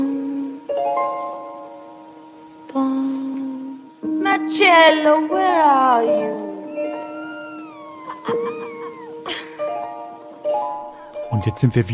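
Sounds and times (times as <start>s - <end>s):
soft steady tone: 0.0s - 11.9s
speech: 4.6s - 6.4s, 11.4s - 11.9s
kitten meowing: 6.2s - 9.6s.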